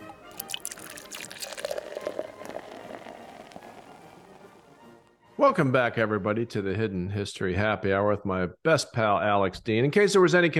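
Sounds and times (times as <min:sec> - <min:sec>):
navy rum being poured into a glass: 0:00.2 - 0:04.8
speech: 0:05.4 - 0:10.5.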